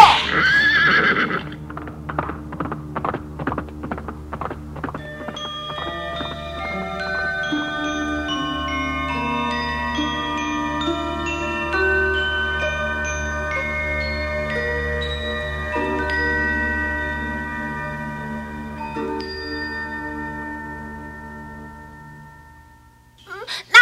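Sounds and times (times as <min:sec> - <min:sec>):
horse neighing: 0:00.0 - 0:01.7
sustained music: 0:00.0 - 0:22.9
ridden horse's hooves clip-clopping: 0:00.2 - 0:07.9.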